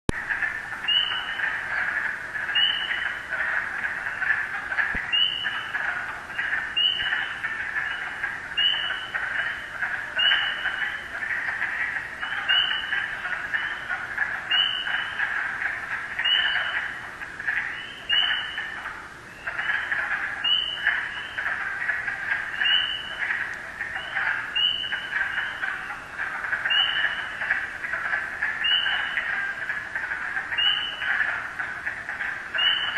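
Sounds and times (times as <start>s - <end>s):
first peepers calling in Rhode Island: 0.1s - 32.9s.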